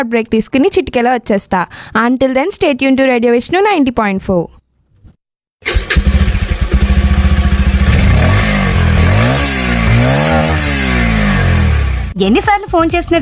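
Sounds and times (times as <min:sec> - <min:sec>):
speech: 0:00.0 - 0:04.6, 0:12.2 - 0:13.2
motorcycle engine starting, idling and revving: 0:05.6 - 0:12.2.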